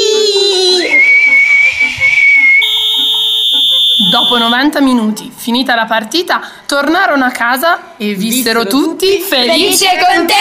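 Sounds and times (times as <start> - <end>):
long referee whistle blast: 0.8 - 4.6
speech: 4.2 - 10.4.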